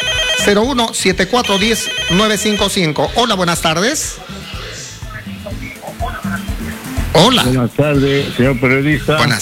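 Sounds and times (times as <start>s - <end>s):
telephone ringing for an incoming listener call: 0.0s - 3.3s
speech: 0.4s - 4.6s, 7.1s - 9.4s.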